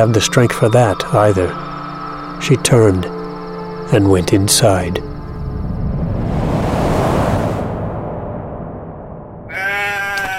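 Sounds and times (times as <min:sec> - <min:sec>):
speech: 0:00.0 - 0:01.7, 0:02.4 - 0:03.2, 0:03.9 - 0:05.1
steady rush of wind-like noise: 0:00.0 - 0:09.7
sheep bleating while being sheared in the heat: 0:09.5 - 0:10.3.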